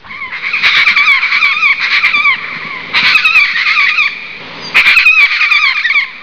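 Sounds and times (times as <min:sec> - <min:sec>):
Major Mitchell's cockatoo screeching: 0:00.1 - 0:06.2.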